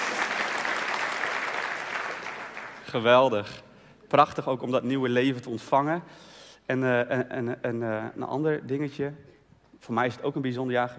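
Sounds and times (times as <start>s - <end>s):
audience applauding new parents: 0.0s - 2.9s
speech: 2.9s - 10.9s.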